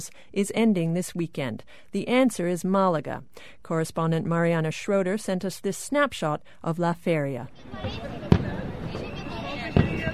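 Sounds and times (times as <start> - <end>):
speech: 0.0 - 9.0
fireworks at a street festival in Malaga, Spain: 7.8 - 10.1.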